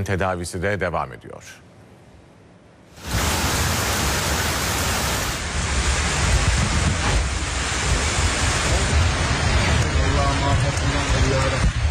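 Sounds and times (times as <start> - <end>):
speech: 0.0 - 1.7, 10.7 - 11.8
rushing floodwater flowing through streets: 3.0 - 11.8.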